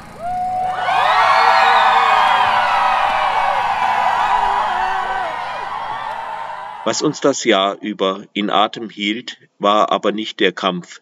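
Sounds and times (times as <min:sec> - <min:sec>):
protest crowd screaming together: 0:00.0 - 0:07.3
speech: 0:06.9 - 0:11.0.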